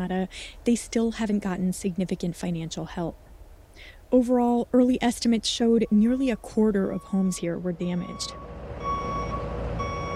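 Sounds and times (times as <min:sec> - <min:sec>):
speech: 0:00.0 - 0:03.2, 0:03.8 - 0:08.5
continuous low truck engine rumble: 0:04.3 - 0:10.1
truck reversing alarm beeping in steady tones: 0:05.8 - 0:10.1.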